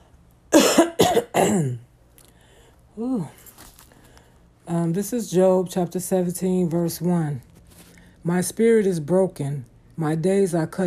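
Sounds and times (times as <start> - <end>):
person coughing: 0.5 - 1.9
speech: 1.4 - 1.8, 3.0 - 3.4, 4.7 - 7.5, 8.2 - 10.8.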